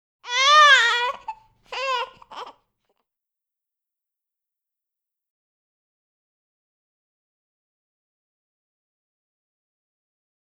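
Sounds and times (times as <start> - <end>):
baby crying: 0.2 - 2.6.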